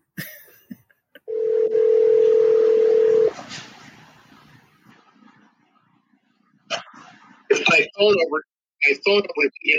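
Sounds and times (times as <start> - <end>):
telephone dial tone: 1.3 - 3.3
people talking: 7.5 - 9.7.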